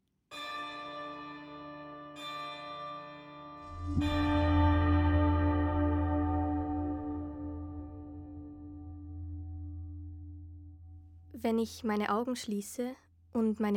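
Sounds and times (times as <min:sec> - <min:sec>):
large church bell tolling in Glarus: 0:03.6 - 0:10.9
speech: 0:03.9 - 0:04.3, 0:11.4 - 0:13.7.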